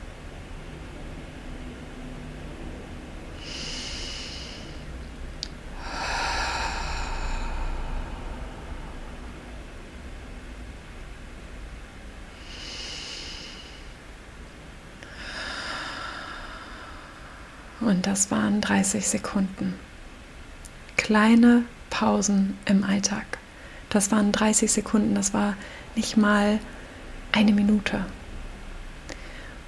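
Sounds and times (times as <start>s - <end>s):
faint steady hiss: 0.0s - 29.6s
slow deep breathing in and out: 3.4s - 10.2s, 12.3s - 14.1s, 15.0s - 17.8s, 23.5s - 23.9s, 25.6s - 26.0s, 29.0s - 29.6s
speech: 17.8s - 19.9s, 21.1s - 28.2s.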